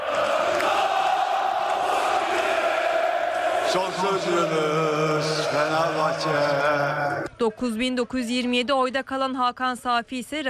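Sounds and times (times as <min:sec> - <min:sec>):
large crowd of club members chanting in celebration of an election victory: 0:00.0 - 0:07.8
speech: 0:03.7 - 0:10.4.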